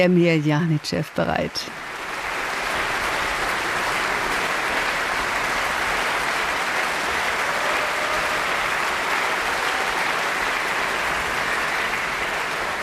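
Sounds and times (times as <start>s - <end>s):
speech: 0.0s - 1.9s
large concert audience applause in a hall: 1.7s - 12.8s.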